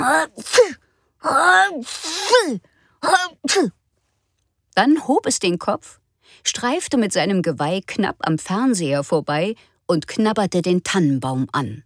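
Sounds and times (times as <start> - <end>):
voice playfully imitating an antlered animal sneezing: 0.0 - 3.8
speech: 0.2 - 3.8, 4.8 - 11.8.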